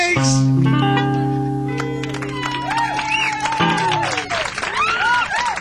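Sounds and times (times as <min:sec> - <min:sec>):
sustained musical tones: 0:00.2 - 0:04.5
audience clapping: 0:01.7 - 0:05.6
whoops and voices crying out: 0:02.3 - 0:05.6.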